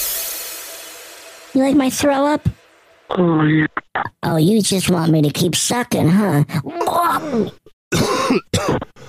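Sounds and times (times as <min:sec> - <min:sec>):
speech: 0:01.5 - 0:09.0
man with deep raspy coughs: 0:06.8 - 0:09.0.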